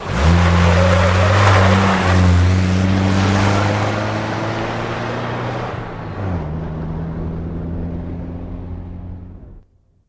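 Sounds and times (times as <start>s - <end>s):
1984 Jeep Cherokee skidding out: 0.0s - 6.7s.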